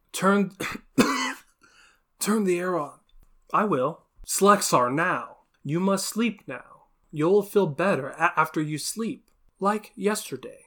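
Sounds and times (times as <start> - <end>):
speech: 0.2 - 0.8, 2.2 - 10.6
person acting out a harsh hacking cough: 0.6 - 1.5.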